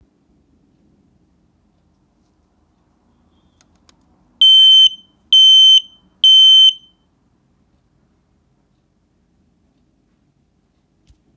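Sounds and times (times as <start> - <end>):
Firex smoke alarm PADC240 test sound: 4.4 - 7.0.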